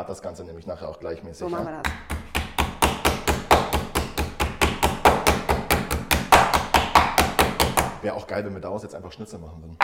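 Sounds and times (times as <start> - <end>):
speech: 0.0 - 2.2, 8.0 - 9.8
meat cutlet being pounded flat: 1.8 - 8.0.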